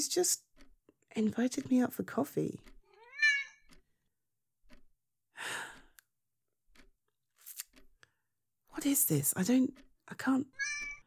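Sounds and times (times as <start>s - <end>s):
speech: 0.0s - 0.5s, 1.2s - 2.7s, 8.8s - 10.8s
cat meowing: 2.9s - 3.7s, 10.6s - 11.0s.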